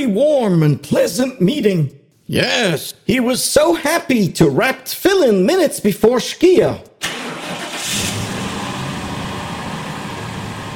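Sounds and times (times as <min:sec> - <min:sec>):
speech: 0:00.0 - 0:07.1
car engine starting and revving while backing out of a driveway: 0:07.0 - 0:10.7.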